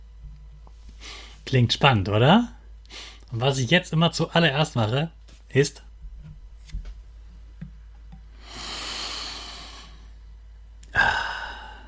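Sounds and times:
deep inhale over a cup of tea: 0:01.0 - 0:01.4, 0:08.3 - 0:10.2, 0:10.9 - 0:11.8
speech: 0:01.5 - 0:02.6, 0:03.3 - 0:05.9
breathy burst: 0:08.4 - 0:10.1, 0:10.9 - 0:11.8.

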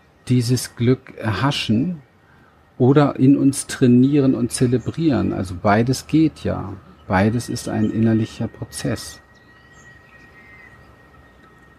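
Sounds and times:
cicadas droning with a high whistling tone and chirps: 0:00.0 - 0:11.7
constant hiss: 0:00.0 - 0:11.7
speech: 0:00.3 - 0:02.1, 0:02.8 - 0:09.2.

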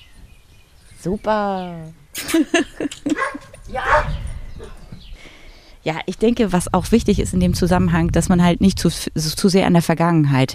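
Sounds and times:
speech: 0:01.0 - 0:04.2, 0:05.8 - 0:10.5
laughter: 0:02.2 - 0:04.0
dog barking at someone passing by the property: 0:03.1 - 0:04.8.

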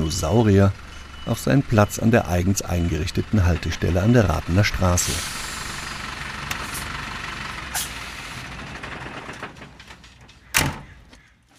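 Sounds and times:
10-tonne delivery truck engine rumble: 0:00.0 - 0:11.5
speech: 0:00.1 - 0:05.4
truck transparent sliding door opening with pneumatic hisses: 0:05.0 - 0:06.9, 0:07.7 - 0:08.7
metal folding steps clattering as they swing down: 0:08.5 - 0:11.5.

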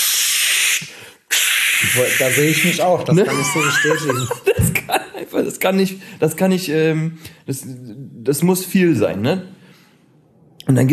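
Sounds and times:
voice imitating the hiss of spray deodorant: 0:00.0 - 0:02.8
speech: 0:01.9 - 0:09.6, 0:10.7 - 0:10.9
laughter: 0:03.0 - 0:05.6.

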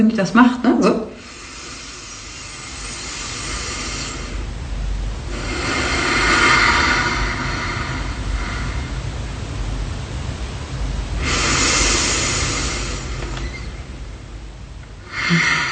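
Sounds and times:
speech: 0:00.0 - 0:01.3
slow belly breathing: 0:01.2 - 0:09.7, 0:11.1 - 0:14.3, 0:14.9 - 0:15.7.

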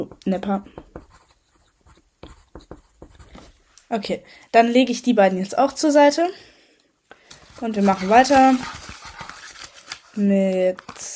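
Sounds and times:
speech: 0:00.0 - 0:00.8, 0:03.9 - 0:06.5, 0:07.6 - 0:08.8, 0:10.2 - 0:11.1
pen scratching across a paper note while writing a name: 0:00.6 - 0:03.5, 0:07.6 - 0:09.1.

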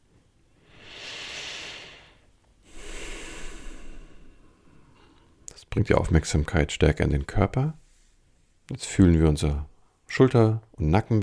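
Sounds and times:
slow deep breathing: 0:00.6 - 0:05.5
speech: 0:05.8 - 0:07.8, 0:08.7 - 0:11.2.

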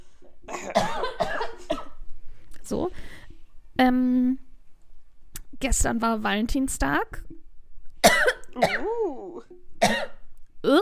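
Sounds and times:
harsh coughs: 0:00.5 - 0:02.0, 0:08.0 - 0:09.1, 0:09.8 - 0:10.2
speech: 0:02.7 - 0:03.2, 0:03.8 - 0:04.4, 0:05.6 - 0:07.4.

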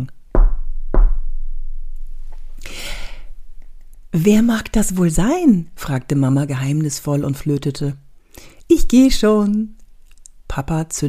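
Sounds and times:
loud knock on a door: 0:00.4 - 0:01.3
soft breathy rush of air: 0:02.5 - 0:03.4
speech: 0:04.1 - 0:09.8, 0:10.5 - 0:11.0.

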